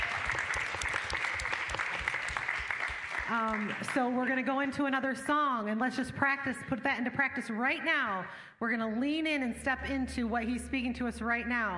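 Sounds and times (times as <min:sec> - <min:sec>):
audience clapping: 0:00.0 - 0:04.5
speech: 0:03.3 - 0:11.7.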